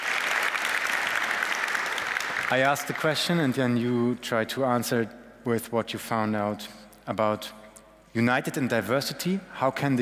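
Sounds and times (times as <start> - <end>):
audience applause at a group discussion event: 0.0 - 3.0
speech: 2.5 - 10.0.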